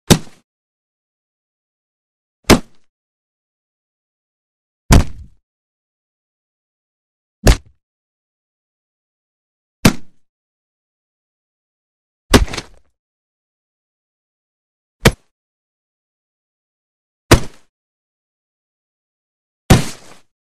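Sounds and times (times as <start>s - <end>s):
heavy body punches with thud: 0.1s - 0.4s, 4.9s - 5.4s, 7.4s - 7.8s, 12.3s - 12.8s, 17.3s - 17.7s, 19.7s - 20.3s.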